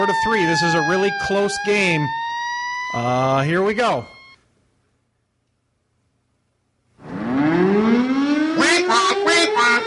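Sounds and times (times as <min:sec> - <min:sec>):
speech: 0:00.0 - 0:02.2, 0:02.9 - 0:04.2
tornado siren winding up: 0:00.0 - 0:04.4, 0:07.0 - 0:09.8.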